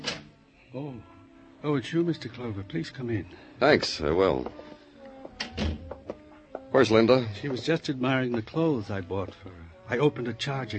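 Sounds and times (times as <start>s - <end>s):
speech: 0.7s - 4.7s, 6.8s - 10.7s
apartment door swinging with a soft low thud: 5.4s - 6.0s.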